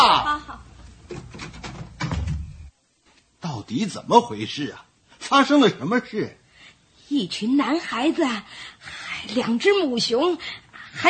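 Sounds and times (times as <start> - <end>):
door scraping and knocking while being closed: 1.0 - 2.7
speech: 3.6 - 6.4, 7.1 - 11.0.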